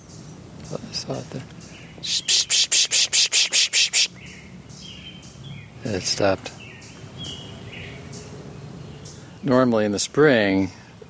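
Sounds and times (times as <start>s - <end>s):
speech: 0.7s - 2.7s, 5.8s - 6.6s, 9.4s - 10.8s
chipmunk chipping call: 2.0s - 5.3s.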